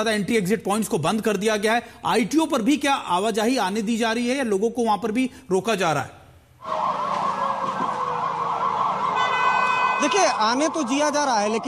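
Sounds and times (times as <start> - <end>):
speech: 0.0 - 6.8, 10.0 - 11.6
police siren wailing in a long traffic jam: 6.6 - 11.6.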